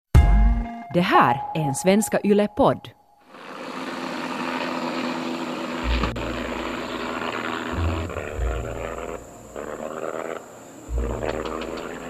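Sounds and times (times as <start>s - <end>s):
speech: 0.9s - 3.0s
propeller plane engine coughing and sputtering over the sea: 3.3s - 12.0s.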